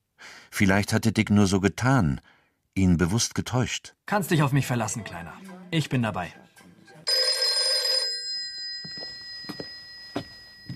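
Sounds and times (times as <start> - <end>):
speech: 0.6 - 6.5
telephone ringing at night: 7.0 - 10.7.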